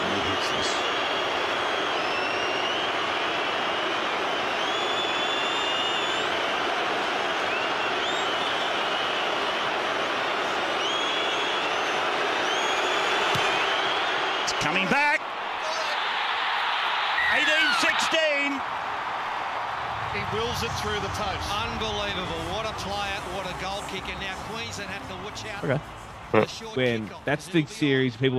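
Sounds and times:
huge stadium crowd roaring and cheering after a goal kick: 0.0 - 28.2
shrill whistles from a stadium crowd: 0.1 - 6.8, 7.4 - 9.8, 10.7 - 14.6, 17.2 - 18.1
speech: 20.3 - 28.3.

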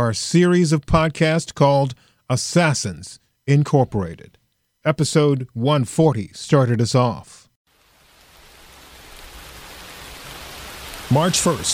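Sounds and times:
speech: 0.0 - 7.4, 11.1 - 11.7
steady rain: 7.7 - 11.7.

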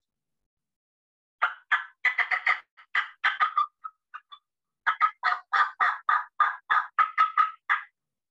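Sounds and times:
turkey hen cutting call with sharp clucks: 1.4 - 7.9.

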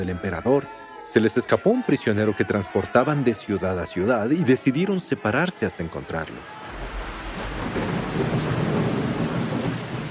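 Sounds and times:
speech: 0.0 - 6.6
heavy rain pouring: 6.3 - 10.0
deep thunder rumbling: 6.7 - 10.0.

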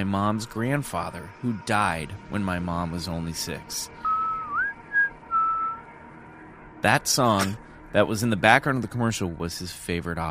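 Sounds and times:
speech: 0.0 - 4.1, 6.8 - 10.3
faint hum: 0.0 - 10.3
man whistling a melodic phrase: 4.0 - 5.8.

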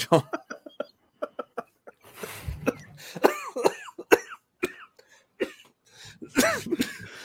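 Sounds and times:
speech: 0.0 - 0.4
person coughing with harsh raspy bursts: 2.4 - 5.7, 6.3 - 7.2.

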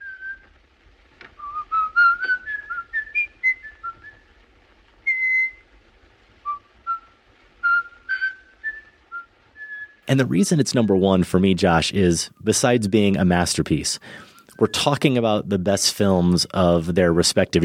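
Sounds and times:
man whistling a classical melody: 0.0 - 0.4, 1.4 - 4.2, 5.0 - 5.6, 6.4 - 10.0, 14.4 - 15.1
speech: 10.1 - 17.6.

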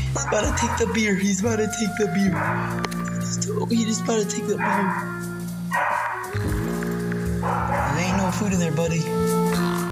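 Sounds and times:
dog barking at a bear: 0.2 - 3.0, 4.5 - 6.4, 7.4 - 8.6
speech: 0.2 - 6.5, 7.6 - 9.7.

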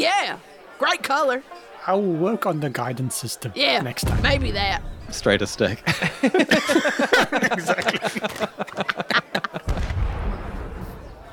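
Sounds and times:
speech: 0.8 - 9.2
deep booming firework blast with low rumble: 4.0 - 5.6, 9.7 - 11.3
laughter: 5.5 - 9.8
fireworks crackling pops: 9.7 - 11.1.

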